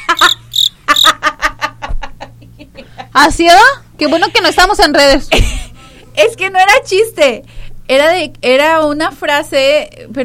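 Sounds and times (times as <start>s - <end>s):
cricket chirping: 0.2s - 1.1s
speech: 3.2s - 5.6s, 6.2s - 10.2s.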